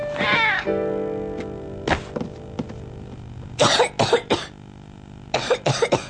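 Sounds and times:
sick boy with the flu whimpering: 0.1s - 0.7s
sick boy with the flu coughing harshly: 3.6s - 4.6s, 5.4s - 6.0s.

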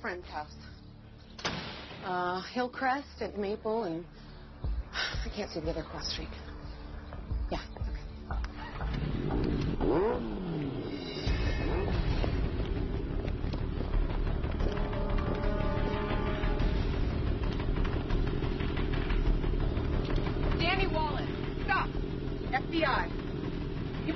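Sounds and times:
speech: 0.0s - 0.8s, 1.4s - 6.4s, 7.5s - 7.8s
motorcycle engine idling during a police stop: 6.4s - 24.1s.

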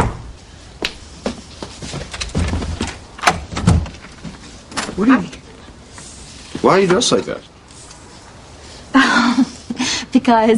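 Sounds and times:
soft rattling and shuffling: 0.8s - 8.4s
door being opened: 2.0s - 5.5s
speech: 5.0s - 5.4s, 6.6s - 7.5s, 10.3s - 10.5s.

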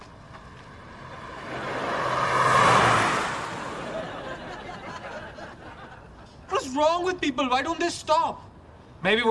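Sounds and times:
car passing by on road: 0.0s - 5.6s
laughter: 3.8s - 6.5s
speech: 6.8s - 9.2s.

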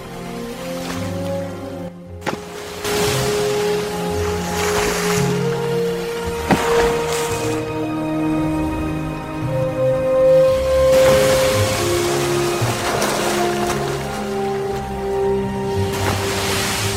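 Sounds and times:
cold rough ocean surf roaring: 0.0s - 16.9s.

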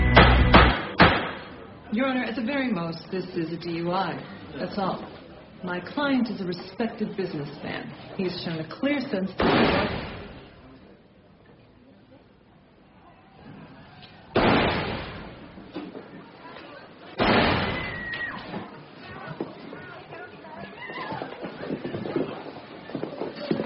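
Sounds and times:
gunshots: 0.1s - 1.7s, 9.4s - 10.5s, 14.3s - 15.7s, 17.2s - 18.1s
murmuring background at a county courthouse: 1.4s - 23.6s
speech: 2.1s - 10.1s.

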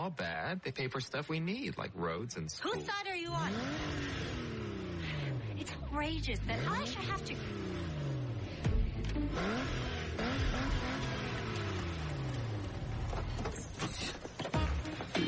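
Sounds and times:
speech: 0.0s - 4.6s, 5.6s - 8.1s, 9.0s - 11.1s
car engine revving: 3.2s - 15.1s.

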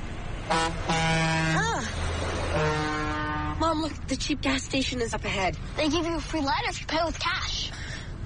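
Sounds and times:
steady road and engine rumble: 0.0s - 8.2s
truck horn honking: 0.4s - 3.8s
speech: 3.8s - 7.9s.

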